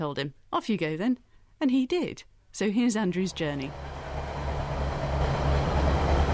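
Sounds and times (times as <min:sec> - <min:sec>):
speech: 0:00.0 - 0:04.0
moving train rumble and hum heard from inside a carriage: 0:03.3 - 0:06.3.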